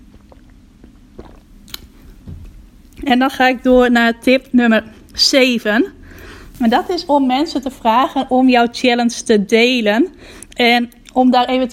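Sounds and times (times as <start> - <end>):
person sipping water: 0.0 - 2.2
soft low gulp of swallowing water: 0.0 - 2.2
speech: 3.0 - 6.0, 6.6 - 11.7.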